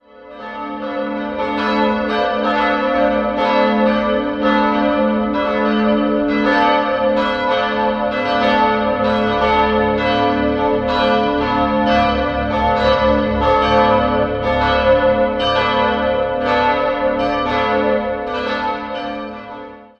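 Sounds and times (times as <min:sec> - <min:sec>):
church bells ringing: 0:00.0 - 0:19.9.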